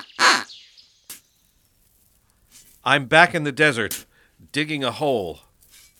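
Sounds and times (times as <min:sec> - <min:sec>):
duck quacking in a flower garden: 0:00.0 - 0:00.6
speech: 0:02.8 - 0:05.5.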